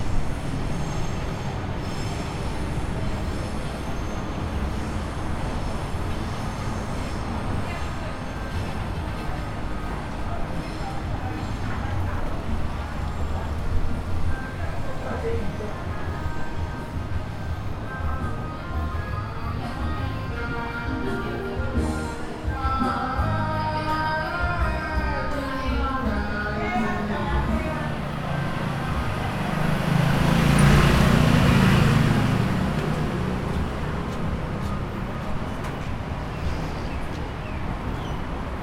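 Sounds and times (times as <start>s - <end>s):
traffic: 0.0s - 38.6s
older local people singing karaoke outdoors: 18.9s - 28.3s.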